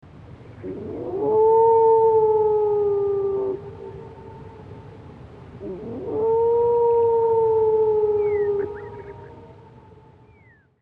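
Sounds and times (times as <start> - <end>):
wolf howling: 0.6 - 4.9, 5.6 - 9.8.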